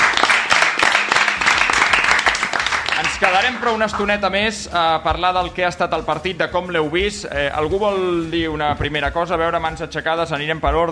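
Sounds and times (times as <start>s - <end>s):
audience applauding after a cup final: 0.0s - 4.3s
speech: 3.2s - 10.8s.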